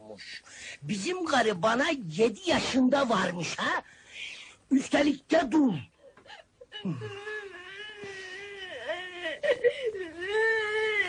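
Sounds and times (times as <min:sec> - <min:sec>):
speech: 0:00.2 - 0:07.3
person crying and whimpering: 0:06.0 - 0:11.0.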